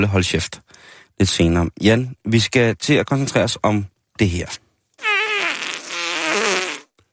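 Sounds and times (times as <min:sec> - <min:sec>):
speech: 0:00.0 - 0:04.6
long loud fart: 0:05.0 - 0:07.0.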